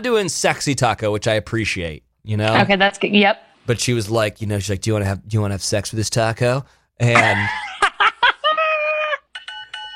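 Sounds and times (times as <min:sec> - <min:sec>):
speech: 0:00.0 - 0:07.6
laughter: 0:07.1 - 0:09.3
doorbell-like electronic chime: 0:09.4 - 0:09.9.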